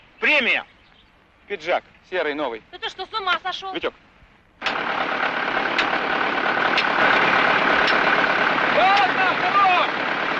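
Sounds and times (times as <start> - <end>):
speech: 0.3 - 0.7, 1.5 - 4.0
truck engine running: 4.6 - 10.3
faint regular clicks: 5.7 - 6.0, 7.8 - 8.1.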